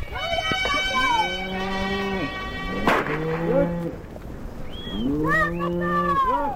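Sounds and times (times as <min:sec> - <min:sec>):
shepherd calling the herd together: 0:00.0 - 0:04.0, 0:04.6 - 0:06.5
cows in a grazing herd mooing: 0:00.7 - 0:04.0, 0:04.9 - 0:06.5.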